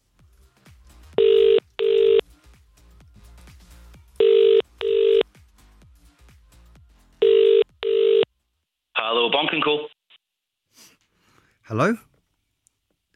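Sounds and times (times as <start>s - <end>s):
phone ringing tone before a call is answered: 1.2s - 2.2s, 4.2s - 5.3s, 7.2s - 8.3s
speech: 11.7s - 12.1s.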